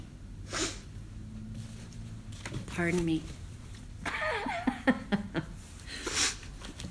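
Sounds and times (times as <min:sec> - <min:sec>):
person blowing nose: 0:00.4 - 0:00.9, 0:05.9 - 0:06.5
speech: 0:02.8 - 0:03.4
laughter: 0:04.0 - 0:05.6.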